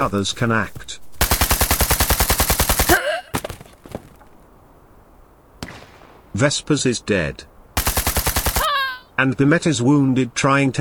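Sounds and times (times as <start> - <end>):
speech: 0.0 - 1.0, 6.4 - 7.5, 9.2 - 10.7
automatic gunfire burst: 1.2 - 3.0, 7.8 - 8.7
single gunshot cracks: 5.6 - 6.2.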